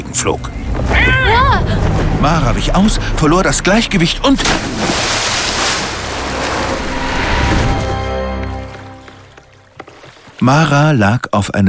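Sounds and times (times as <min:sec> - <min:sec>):
low rumble: 0:00.0 - 0:09.7
speech: 0:00.2 - 0:05.2, 0:10.4 - 0:11.6
water lapping against roughly hewn wooden pilings beneath a wooden jetty: 0:04.3 - 0:11.2.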